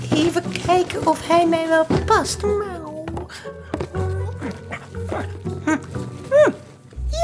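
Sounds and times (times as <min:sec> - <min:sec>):
speech: 0:00.1 - 0:04.1
person in a dog mask imitating a barking dog: 0:04.2 - 0:06.6.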